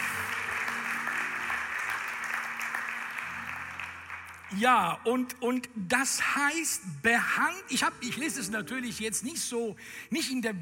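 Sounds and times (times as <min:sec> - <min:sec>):
audience applause at a church service: 0:00.0 - 0:04.5
speech: 0:04.5 - 0:10.6.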